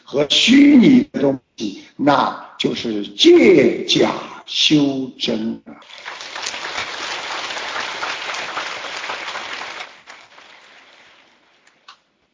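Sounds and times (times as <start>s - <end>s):
speech: 0.1s - 6.1s
crowd clapping: 5.8s - 11.9s.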